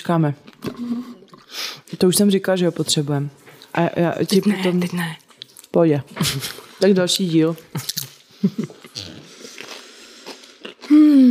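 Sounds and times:
speech: 0:00.0 - 0:01.2, 0:02.0 - 0:09.1
crunchy biting and chewing of food: 0:07.8 - 0:11.0.

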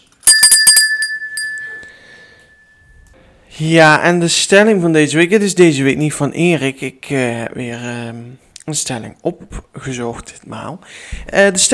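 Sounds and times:
small bell ringing: 0:00.0 - 0:03.0
speech: 0:03.6 - 0:11.7.

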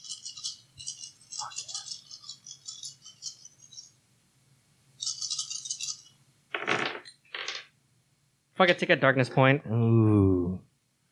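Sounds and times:
dice clattering as they are tossed and land: 0:06.5 - 0:07.7
speech: 0:08.6 - 0:10.7.

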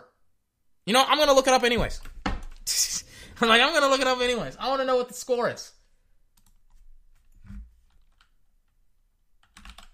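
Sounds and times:
speech: 0:00.9 - 0:02.1, 0:02.7 - 0:05.8
typing on a computer keyboard: 0:09.4 - 0:09.9.

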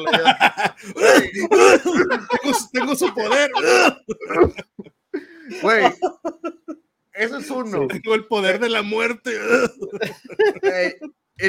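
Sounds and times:
speech: 0:00.0 - 0:04.7, 0:05.5 - 0:06.0, 0:07.4 - 0:11.4
laughter: 0:00.0 - 0:06.8, 0:09.3 - 0:11.2
person faking a coughing fit with harsh wheezy coughs: 0:01.0 - 0:04.7.

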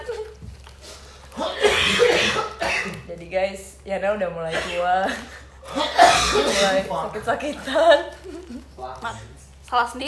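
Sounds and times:
person coughing harshly: 0:01.4 - 0:03.1, 0:05.7 - 0:06.8
speech: 0:03.2 - 0:10.0.

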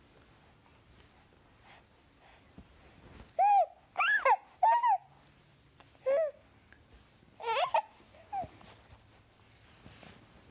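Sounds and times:
baby making happy squeals and coos: 0:03.4 - 0:05.1, 0:07.4 - 0:08.5.

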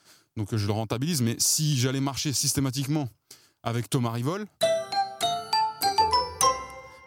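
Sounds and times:
speech: 0:00.4 - 0:04.6
bright bell-like chime jingle: 0:04.6 - 0:07.0.

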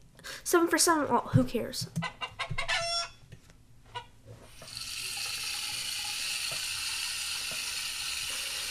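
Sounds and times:
speech: 0:00.5 - 0:02.2
hen clucking in quick bursts: 0:02.0 - 0:03.2.

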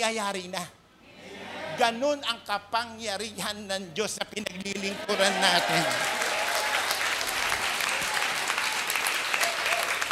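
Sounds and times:
speech: 0:00.0 - 0:00.8, 0:01.8 - 0:06.2
audience applauding: 0:05.0 - 0:10.0.

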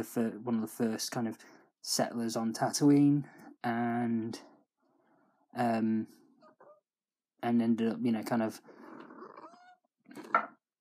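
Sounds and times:
speech: 0:00.0 - 0:04.5, 0:05.5 - 0:06.2, 0:07.4 - 0:08.8
cat calling: 0:09.0 - 0:10.4.

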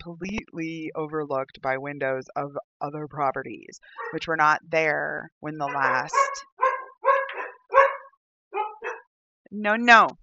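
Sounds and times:
speech: 0:00.0 - 0:06.6, 0:09.5 - 0:10.2
dog barking: 0:03.9 - 0:04.2, 0:05.6 - 0:09.1.

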